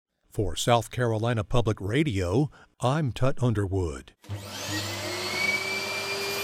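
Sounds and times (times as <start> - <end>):
speech: 0.4 - 4.9
chimney sweep's high-powered vacuum cleaner running: 4.2 - 6.4.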